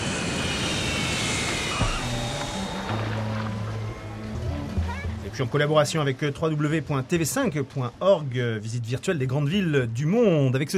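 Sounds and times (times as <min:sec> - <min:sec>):
airplane cabin and engine roar before landing: 0:00.0 - 0:05.4
speech: 0:05.4 - 0:10.7.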